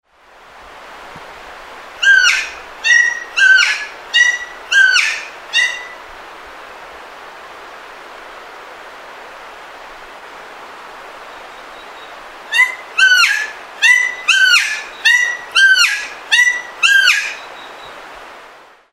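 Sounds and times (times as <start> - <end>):
New Caledonian friarbird calling: 2.0 - 6.0, 11.3 - 18.0.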